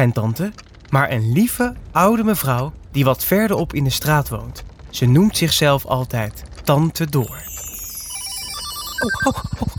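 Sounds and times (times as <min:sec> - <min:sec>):
speech: 0:00.0 - 0:07.6, 0:09.0 - 0:09.7
short bright electronic telephone beeps: 0:07.2 - 0:09.7
telephone ringtone with pulsing ring pattern: 0:07.2 - 0:09.7.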